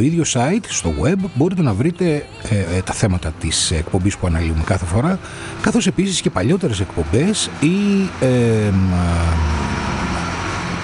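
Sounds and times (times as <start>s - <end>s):
speech: 0.0s - 9.6s
car passing by outside open door: 5.0s - 10.8s.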